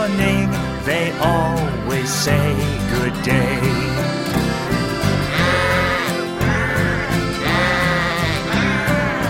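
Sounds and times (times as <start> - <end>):
speech: 0.0 - 4.2
steady full musical accompaniment: 0.0 - 9.2
voices imitating sheep bleating within a song: 5.0 - 9.2.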